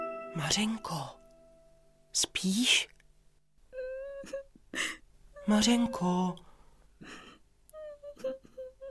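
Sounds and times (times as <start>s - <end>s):
speech: 0.4s - 1.2s, 2.2s - 2.9s, 5.5s - 7.2s
girl crying and whimpering: 3.7s - 6.2s, 7.1s - 8.8s.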